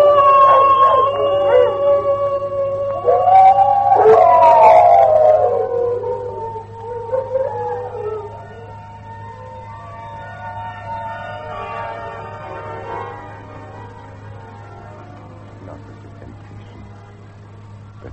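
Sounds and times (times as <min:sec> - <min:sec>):
several wolves howling together: 0:00.0 - 0:09.0
steady low hum: 0:00.0 - 0:18.1.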